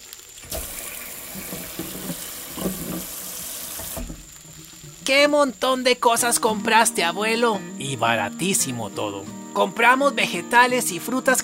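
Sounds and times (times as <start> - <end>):
faucet water running into a sink: 0.4 - 5.6
water apple knocking and splashing as it is washed: 0.5 - 5.1
speech: 5.1 - 11.4.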